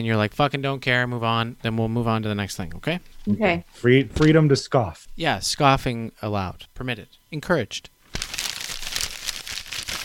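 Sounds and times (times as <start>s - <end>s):
speech: 0.0s - 8.0s
paper being rumpled and crinkled: 8.1s - 10.0s.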